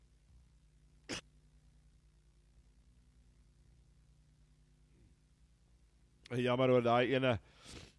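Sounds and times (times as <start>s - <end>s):
person coughing: 1.1s - 1.3s
speech: 6.3s - 7.8s.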